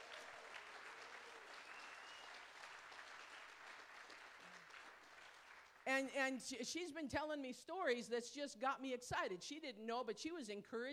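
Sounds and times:
audience applauding: 0.0 - 5.9
speech: 5.8 - 10.9.

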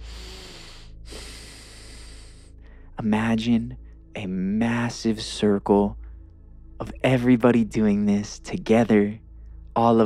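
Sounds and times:
deep breath, long airy inhale and steady exhale: 0.0 - 3.0
speech: 3.0 - 6.0, 6.8 - 9.2, 9.8 - 10.0.

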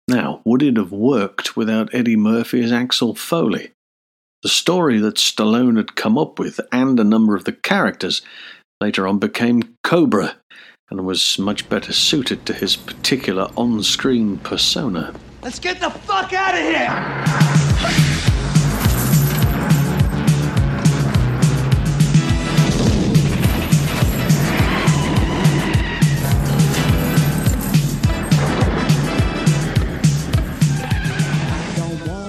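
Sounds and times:
speech: 0.1 - 3.8, 4.4 - 18.6
tires screeching in a film truck chase: 16.9 - 31.9
pounding film score rhythm: 17.4 - 32.2
truck engines roaring in a film truck chase: 18.2 - 31.6
people shouting: 24.3 - 27.4.

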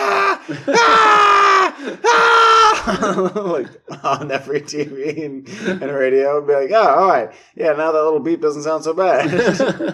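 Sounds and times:
stock horror-movie scream effect: 0.0 - 3.0
laughter: 0.4 - 6.0, 9.2 - 9.9
speech: 0.5 - 1.0, 3.1 - 9.9.

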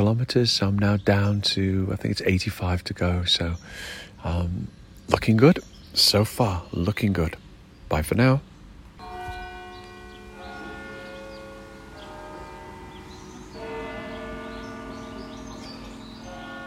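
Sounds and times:
speech: 0.0 - 8.5
faint birdsong: 0.0 - 16.6
soft gentle wind: 0.0 - 16.6
church bells ringing the hour: 9.0 - 16.6.

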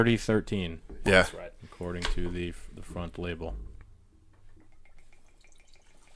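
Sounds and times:
speech: 0.0 - 3.7
whisky pouring into a shot glass: 4.6 - 6.1.

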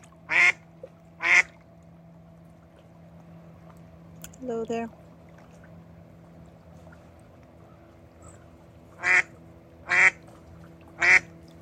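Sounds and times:
speech: 4.4 - 5.0
female duck quacking: 9.0 - 9.3, 9.9 - 10.2, 11.0 - 11.3.

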